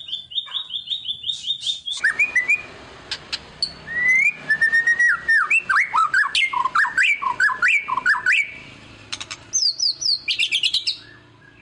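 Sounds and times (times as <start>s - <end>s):
White-rumped shama singing varied whistled phrases: 0.0s - 2.7s, 3.6s - 8.7s, 9.6s - 11.5s
sharp clicking sounds: 3.0s - 3.8s, 9.1s - 9.5s.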